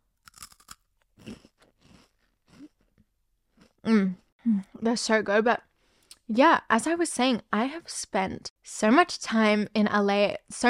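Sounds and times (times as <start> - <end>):
spicy dried pea snacks being crunched and chewed: 0.2 - 3.8
speech: 3.9 - 4.2, 4.8 - 5.7, 6.3 - 10.6.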